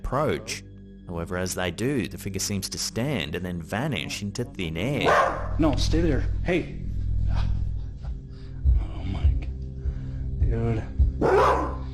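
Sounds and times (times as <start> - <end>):
speech: 0.1 - 7.5
dull rumbling background: 3.5 - 11.9
dog barking: 5.0 - 5.6, 11.2 - 11.9.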